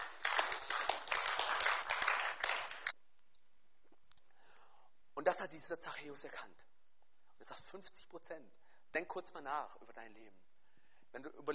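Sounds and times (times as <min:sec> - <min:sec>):
audience applause: 0:00.0 - 0:02.9
speech: 0:05.4 - 0:06.7, 0:07.4 - 0:10.5, 0:11.1 - 0:11.5.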